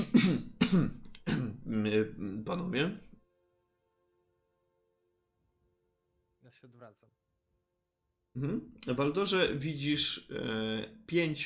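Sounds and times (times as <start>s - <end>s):
person loudly clearing throat in rough gravelly bursts: 0.0s - 1.7s
speech: 0.3s - 1.0s, 1.7s - 3.1s, 6.6s - 7.2s, 8.4s - 11.4s.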